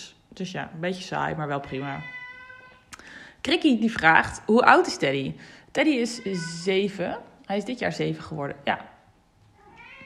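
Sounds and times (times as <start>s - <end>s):
speech: 0.4s - 2.2s, 3.4s - 8.9s
7-year-old cat meowing for attention: 1.8s - 2.9s, 6.0s - 6.7s, 9.6s - 10.0s.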